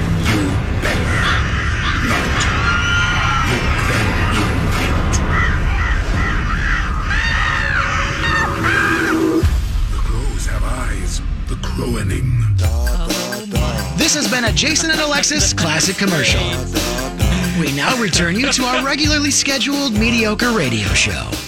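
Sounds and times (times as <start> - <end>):
heavy rumbling din: 0.0 - 21.3
laughter: 0.3 - 6.0, 14.7 - 20.7
people shouting and screaming: 0.4 - 9.4, 15.8 - 17.1
dense flock of crows cawing: 0.8 - 9.4
speech: 14.5 - 17.0, 17.6 - 21.4.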